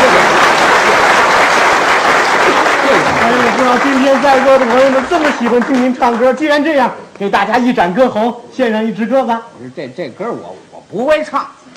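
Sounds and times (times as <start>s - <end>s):
crowd applause: 0.0s - 6.4s
speech: 3.8s - 11.6s.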